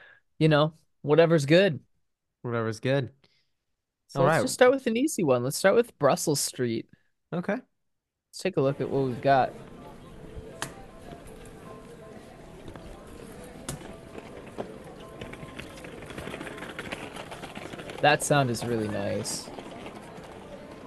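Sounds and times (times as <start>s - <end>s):
speech: 0.4s - 3.2s, 4.1s - 7.7s, 8.4s - 9.8s, 18.0s - 19.6s
small trolley rattling along a city street: 11.2s - 20.8s.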